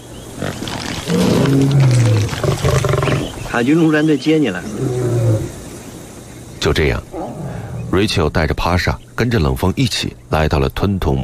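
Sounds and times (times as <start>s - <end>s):
lions roaring and growling: 0.4s - 3.5s, 4.6s - 5.6s, 7.1s - 8.2s
speech: 1.5s - 2.0s, 3.6s - 5.0s, 6.6s - 7.2s, 7.9s - 11.2s.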